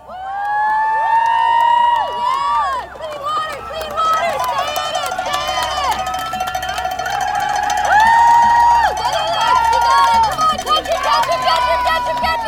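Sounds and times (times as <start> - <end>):
large crowd cheering at a boat race start: 0.0 - 12.4.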